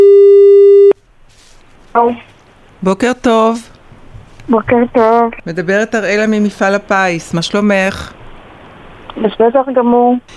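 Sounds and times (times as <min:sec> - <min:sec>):
telephone line signal when placing a call: 0:00.0 - 0:01.0
speech: 0:02.0 - 0:03.7, 0:04.5 - 0:08.2, 0:09.2 - 0:10.3.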